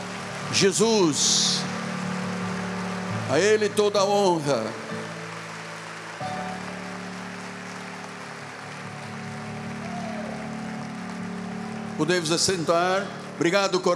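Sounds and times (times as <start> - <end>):
church audience applauding: 0.0 - 13.9
sustained keyboard or organ chords droning: 0.0 - 13.9
speech: 0.5 - 1.6, 3.3 - 5.0, 12.0 - 13.9.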